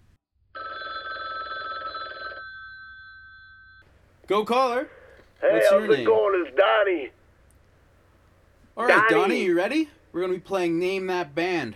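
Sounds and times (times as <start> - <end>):
telephone bell ringing: 0.5 - 3.8
speech: 4.3 - 7.2, 8.8 - 11.7.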